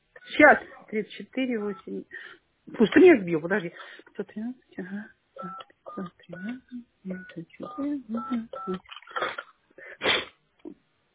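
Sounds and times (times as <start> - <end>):
person talking over the telephone line: 0.2 - 2.1, 3.5 - 8.9
speech: 0.4 - 9.4
telephone keypad dialing tones: 5.4 - 8.9.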